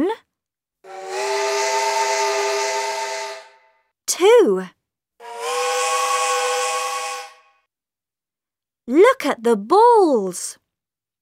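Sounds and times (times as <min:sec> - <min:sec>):
steam train whistle: 0:00.8 - 0:03.8, 0:05.2 - 0:07.7
speech: 0:04.4 - 0:04.8, 0:08.9 - 0:10.6.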